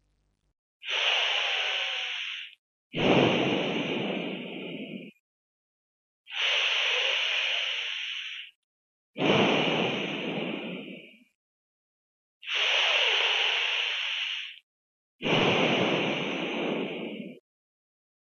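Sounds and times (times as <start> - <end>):
breathing: 0.8 - 5.2, 6.3 - 8.6, 9.2 - 11.4, 12.4 - 14.6, 15.2 - 17.4.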